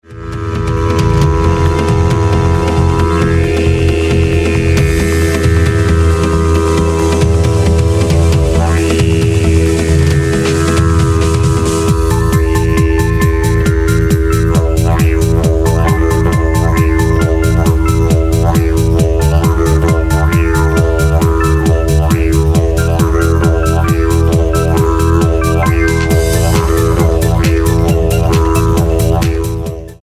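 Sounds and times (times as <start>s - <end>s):
didgeridoo disco music: 0.0s - 30.0s.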